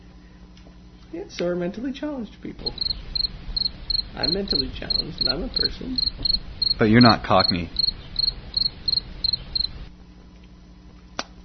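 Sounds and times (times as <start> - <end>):
quiet hum: 0.0 - 11.4
speech: 1.1 - 3.1, 4.2 - 7.8
cricket chirping: 2.6 - 9.9.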